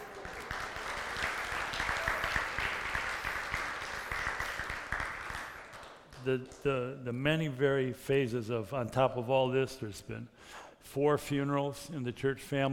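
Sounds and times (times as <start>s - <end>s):
church audience applauding an engaged couple: 0.0s - 6.6s
speech: 6.2s - 12.7s.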